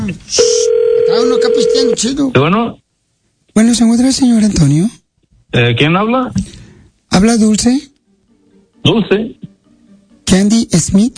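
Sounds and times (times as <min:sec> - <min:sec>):
speech: 0:00.1 - 0:02.8, 0:03.6 - 0:07.9, 0:08.8 - 0:09.5, 0:10.3 - 0:11.1
telephone dial tone: 0:00.4 - 0:02.0.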